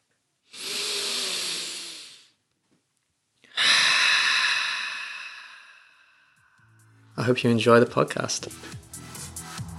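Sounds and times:
deep slow restorative breath: 0.5 - 2.4, 3.4 - 7.0
speech: 7.2 - 8.8.

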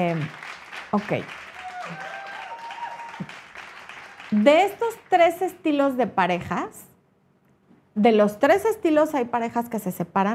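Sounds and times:
speech: 0.0 - 2.1, 4.3 - 6.8, 8.0 - 10.3
audience applauding: 0.0 - 5.3.

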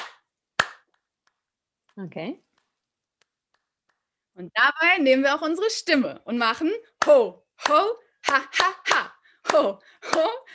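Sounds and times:
rhythmic hand clapping: 0.0 - 1.4, 7.0 - 10.4
speech: 2.0 - 2.5, 4.4 - 10.5.

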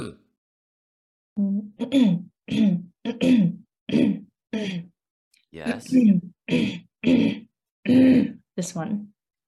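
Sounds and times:
speech: 1.4 - 3.6, 5.6 - 9.1
person clearing throat: 1.8 - 4.2, 5.7 - 8.4.

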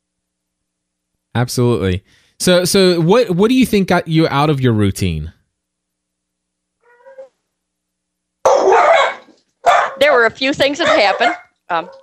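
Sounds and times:
speech: 1.4 - 5.4, 10.3 - 12.0
dog whining: 6.8 - 7.4, 8.5 - 10.0
dog barking and yelping: 8.5 - 10.1, 10.7 - 12.0.

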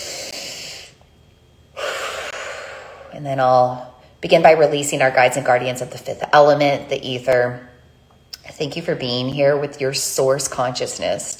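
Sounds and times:
deep breath taken to open a new moon circle: 1.7 - 3.2
speech: 3.1 - 7.7, 8.5 - 11.3.

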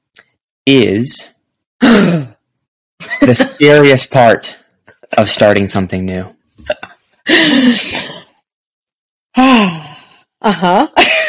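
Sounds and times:
speech: 0.7 - 2.3, 3.2 - 8.1, 10.5 - 11.1
person letting out a little gasp: 7.3 - 8.3, 9.4 - 10.2.

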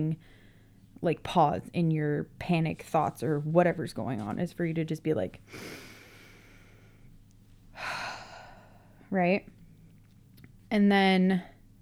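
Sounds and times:
speech: 0.0 - 0.4, 1.0 - 5.9, 9.1 - 9.6, 10.7 - 11.5
deep breath: 0.2 - 0.8, 5.5 - 7.1, 7.7 - 9.1.

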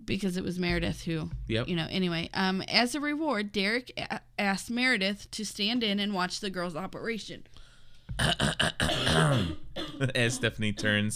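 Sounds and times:
speech: 0.1 - 7.5, 8.2 - 11.1
rough strained throat sound: 8.1 - 11.1
harsh loud coughs: 8.2 - 11.1.

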